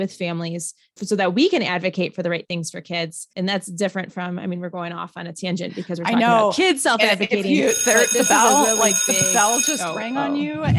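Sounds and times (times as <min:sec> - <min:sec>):
speech: 0:00.0 - 0:10.7
laughter: 0:05.6 - 0:10.6
electric school bell ringing: 0:07.5 - 0:10.5.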